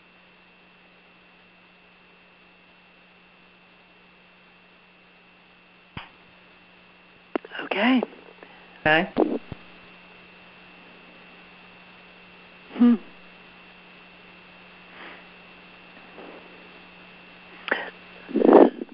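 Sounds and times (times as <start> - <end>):
steady low electrical hum: 0.0 - 18.9
speech: 7.7 - 8.2, 8.8 - 9.5
short sharp coughs: 12.8 - 13.1, 17.7 - 18.0.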